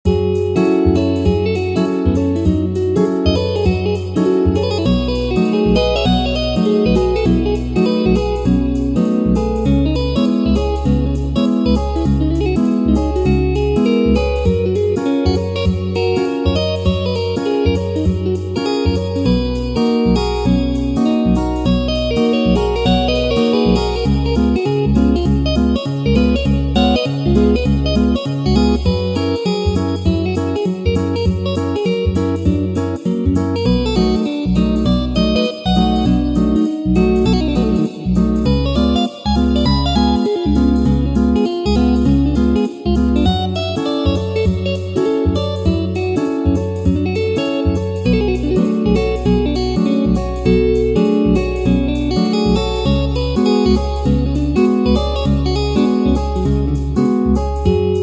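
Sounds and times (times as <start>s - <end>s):
guitar rewind effect: 0.0s - 58.0s.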